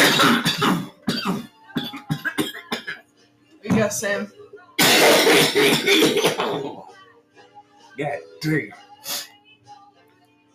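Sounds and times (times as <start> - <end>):
harsh coughing after a dab hit hurt the throat: 0.0 - 3.1, 4.8 - 6.7
speech: 3.8 - 4.4, 5.2 - 6.9, 8.0 - 8.8.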